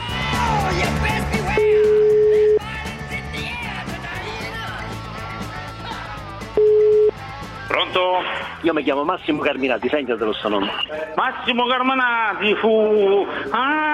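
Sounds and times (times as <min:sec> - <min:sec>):
busy sound: 0:00.0 - 0:13.9
ringback tone beeps on a telephone line with a faulty phone system: 0:01.6 - 0:02.6, 0:06.6 - 0:07.1
speech: 0:08.6 - 0:13.9.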